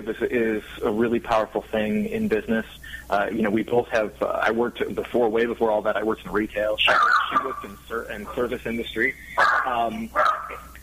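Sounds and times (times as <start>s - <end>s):
speech: 0.0s - 10.7s
dog barking: 6.9s - 7.7s, 9.4s - 10.7s.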